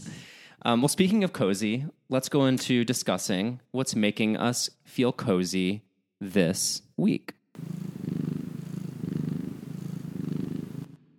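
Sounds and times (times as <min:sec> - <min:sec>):
speech: 0:00.6 - 0:07.7
cat purring: 0:07.6 - 0:11.0.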